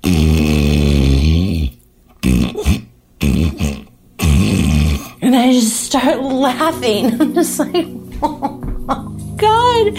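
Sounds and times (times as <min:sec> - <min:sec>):
voice imitating a partner's snoring in bed: 0:00.0 - 0:05.3
speech: 0:06.0 - 0:09.0, 0:09.8 - 0:09.9
laughter: 0:07.0 - 0:09.2.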